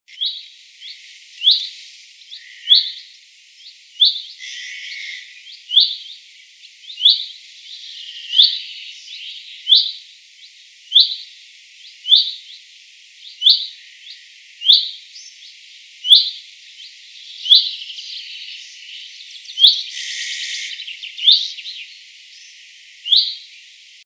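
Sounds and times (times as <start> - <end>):
Pyrrhula pyrrhula bullfinch calling: 0.1 - 3.1, 4.0 - 6.2, 6.8 - 10.0, 10.9 - 11.3, 11.9 - 12.6, 13.2 - 15.3, 16.0 - 16.4, 17.4 - 21.9, 23.0 - 23.5.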